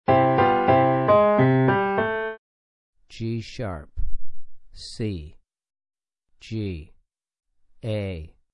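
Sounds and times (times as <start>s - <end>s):
piano four-note melodic ear training melody: 0.1s - 2.4s.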